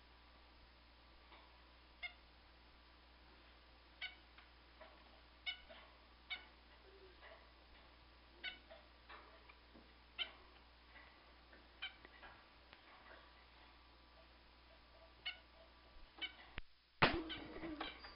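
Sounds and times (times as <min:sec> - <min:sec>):
caged pet bird chirping: 0:04.0 - 0:10.7, 0:13.0 - 0:16.6, 0:17.2 - 0:18.1.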